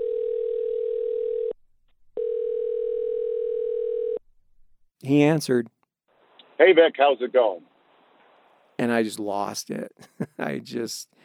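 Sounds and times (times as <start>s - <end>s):
telephone dial tone after a number is dialed: 0.0s - 1.6s, 2.2s - 4.2s
speech: 5.0s - 5.8s, 6.6s - 7.7s, 8.8s - 11.2s.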